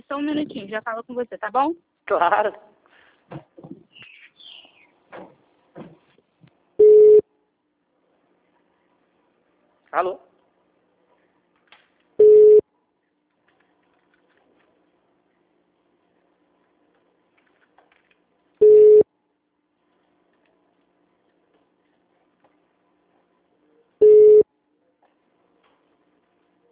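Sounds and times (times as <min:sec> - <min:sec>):
speech: 0:00.1 - 0:02.7, 0:03.3 - 0:03.5, 0:09.9 - 0:10.3
telephone busy signal beeps after a call drops: 0:06.8 - 0:07.2, 0:12.2 - 0:12.6, 0:18.6 - 0:19.1, 0:24.0 - 0:24.5.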